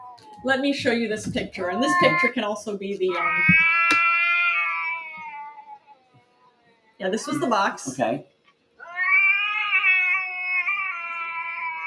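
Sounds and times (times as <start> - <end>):
speech: 0.4 - 4.0, 7.0 - 8.3
cat meowing: 1.7 - 2.3, 3.1 - 7.0, 8.8 - 11.8.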